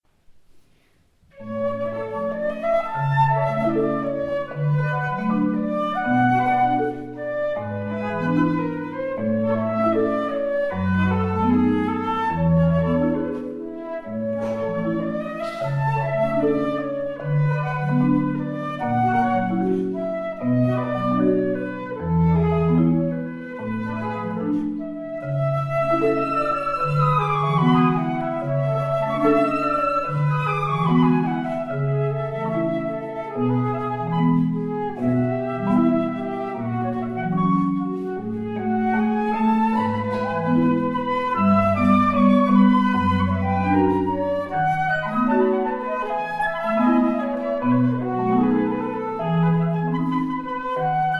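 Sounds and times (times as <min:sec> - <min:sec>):
flutes: 0:01.4 - 0:51.1
marimba: 0:12.8 - 0:21.8, 0:22.7 - 0:25.0, 0:25.6 - 0:33.3, 0:33.9 - 0:50.5.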